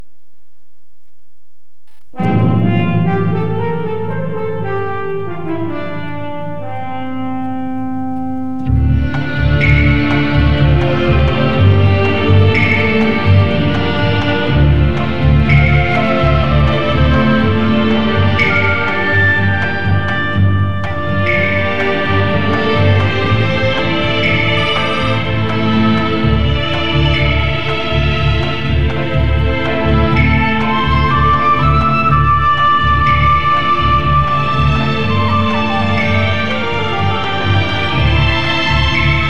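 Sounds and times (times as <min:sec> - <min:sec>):
neo-traditional Japanese music: 0:02.1 - 0:39.2.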